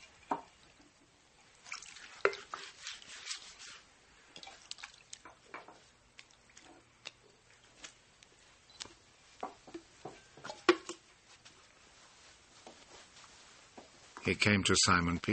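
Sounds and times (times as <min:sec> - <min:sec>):
water poured into a wash basin: 0:01.5 - 0:05.4
water splashing as feet are washed: 0:01.5 - 0:07.2
speech: 0:14.3 - 0:15.3.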